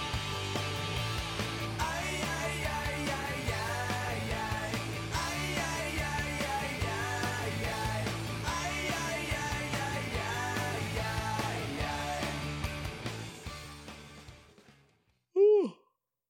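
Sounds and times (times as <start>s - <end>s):
music: 0.0s - 15.2s
person yawning: 15.4s - 15.9s.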